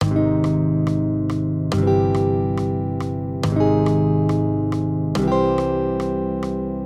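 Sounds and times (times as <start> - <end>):
accompaniment of major triads with root movement of four semitones: 0.0 - 6.8.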